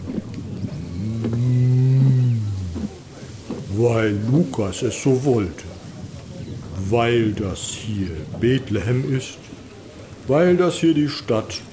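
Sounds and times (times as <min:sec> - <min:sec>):
faint noise: 0:00.0 - 0:11.7
person imitating a sheep bleat: 0:00.8 - 0:02.8
speech: 0:03.8 - 0:05.7, 0:06.9 - 0:09.5, 0:10.3 - 0:11.7.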